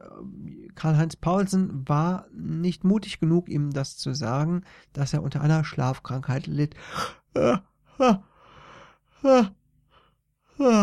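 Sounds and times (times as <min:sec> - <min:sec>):
speech: 0:00.2 - 0:08.3, 0:09.2 - 0:09.6, 0:10.6 - 0:10.8
voice making exaggerated yawning sounds: 0:07.0 - 0:08.4, 0:09.2 - 0:09.6, 0:10.5 - 0:10.8.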